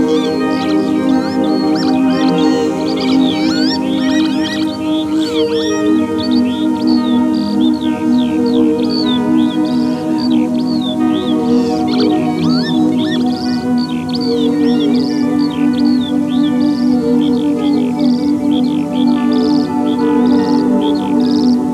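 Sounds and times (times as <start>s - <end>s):
chorus of small birds chirping on marshes in springtime: 0.0s - 21.7s
steady low drone: 0.0s - 21.7s.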